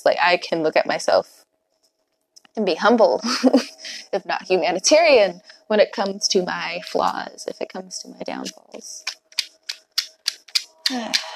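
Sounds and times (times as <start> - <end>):
speech: 0.0 - 1.4, 2.6 - 9.1, 10.9 - 11.3
tarot cards being shuffled by hand: 9.0 - 11.3
person murmuring: 10.5 - 11.3.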